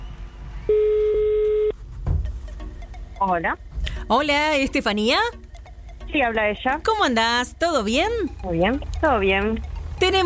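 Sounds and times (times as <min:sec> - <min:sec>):
telephone call tone beep as a number is dialed: 0:00.7 - 0:01.8
soft thump: 0:02.0 - 0:02.4
speech: 0:03.2 - 0:05.4, 0:06.1 - 0:10.2.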